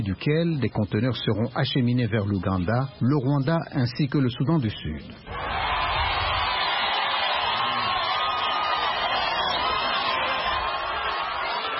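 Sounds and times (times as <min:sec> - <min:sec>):
speech: 0:00.0 - 0:05.7
large enthusiastic crowd cheering and shouting at a train station: 0:05.3 - 0:11.7.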